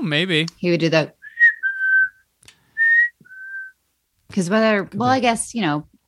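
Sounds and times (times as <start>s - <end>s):
speech: 0.1s - 1.2s, 4.3s - 5.9s
person whistling a video game character's tune: 1.2s - 2.2s, 2.8s - 3.8s.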